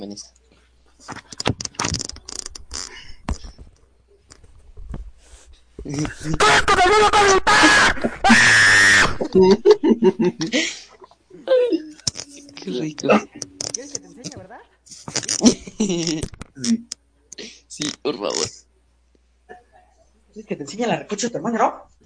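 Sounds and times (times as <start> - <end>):
speech: 0.0 - 0.4, 1.0 - 1.6, 5.8 - 8.7, 9.3 - 10.8, 12.7 - 18.6, 20.4 - 22.0
person screaming in high-pitched child-like screams: 6.2 - 9.7
laughter: 9.2 - 11.0.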